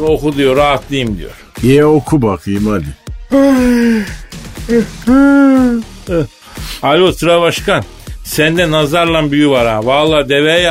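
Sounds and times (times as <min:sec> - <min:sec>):
speech: 0:00.0 - 0:10.7
person yawning loudly: 0:03.3 - 0:06.4
shorter breathy vocal sounds and gasps: 0:03.3 - 0:06.8.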